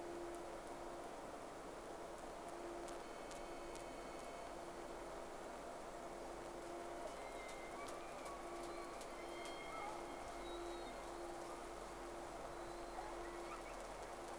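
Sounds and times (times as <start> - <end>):
steady low hum: 0.0 - 14.3
whale tonal moans and whistled sweeps: 6.7 - 14.3.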